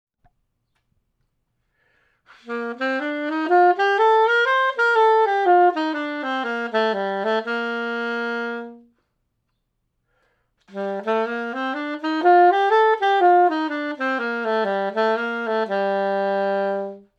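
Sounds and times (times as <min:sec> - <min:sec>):
major and minor scales: 0:02.3 - 0:09.0, 0:10.7 - 0:17.1.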